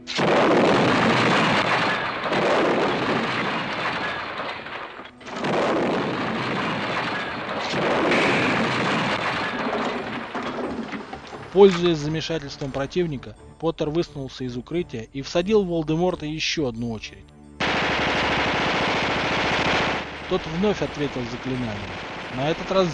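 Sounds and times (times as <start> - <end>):
rumble of multiple explosions: 0.0 - 12.9, 17.6 - 22.9
speech: 11.6 - 17.4, 20.3 - 22.9.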